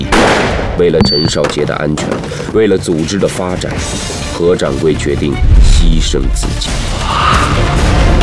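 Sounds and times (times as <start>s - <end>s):
gunshot-like bangs: 0.1s - 0.7s
speech: 0.8s - 8.1s.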